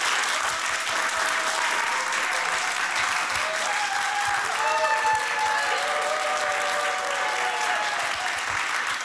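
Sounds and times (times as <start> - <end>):
adult audience applauding: 0.0 - 9.0
faint shouts and whoops from a crowd of adults: 1.6 - 8.4.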